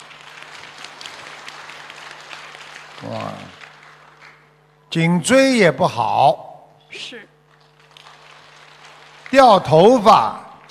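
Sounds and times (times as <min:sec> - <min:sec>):
applause of many hands clapping: 0:00.0 - 0:05.0, 0:07.4 - 0:10.6
speech: 0:03.0 - 0:03.6, 0:04.9 - 0:07.3, 0:09.3 - 0:10.4.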